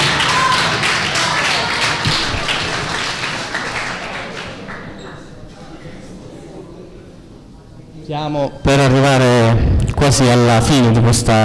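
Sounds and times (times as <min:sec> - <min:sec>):
crowd applauding: 0:00.0 - 0:05.5
speech: 0:08.1 - 0:11.4.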